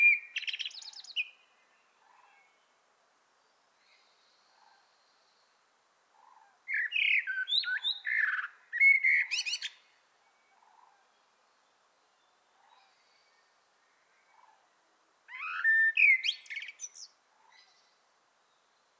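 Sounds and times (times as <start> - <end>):
common blackbird Turdus merula singing: 0.0 - 1.4, 6.2 - 9.8, 15.3 - 17.8.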